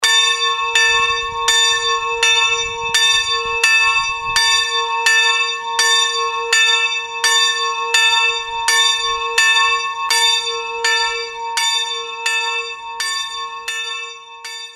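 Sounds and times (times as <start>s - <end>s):
church bells ringing in Egelsbach-Erzhausen: 0.0s - 14.7s.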